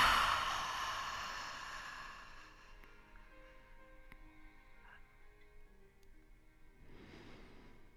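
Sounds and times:
slow soft exhale during a guided mindfulness breathing exercise: 0.0 - 3.3, 6.8 - 7.9.

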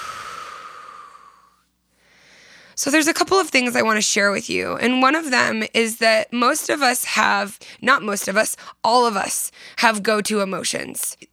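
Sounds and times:
deep breath during a group calming exercise: 0.0 - 2.8
speech: 2.8 - 11.3.

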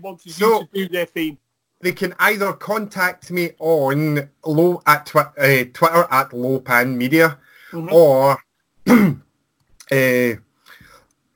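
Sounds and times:
speech: 0.0 - 9.2, 9.9 - 10.4
man with a dry throat clearing his throat: 8.8 - 9.3.

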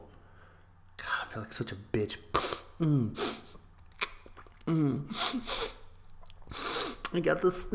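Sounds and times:
speech: 1.3 - 3.4, 4.7 - 5.8, 7.1 - 7.7
sniffling from a runny nose: 2.3 - 3.6, 5.0 - 5.9, 6.5 - 7.1.

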